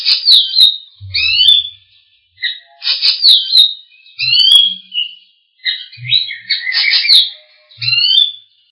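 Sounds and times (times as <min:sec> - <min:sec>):
birds singing in Indonesia: 0:00.0 - 0:08.7.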